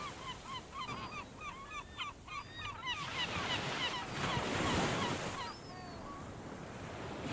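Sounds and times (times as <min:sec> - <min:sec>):
surf washing: 0:00.0 - 0:01.2, 0:02.9 - 0:07.3
island seabird flock calling: 0:00.0 - 0:06.4.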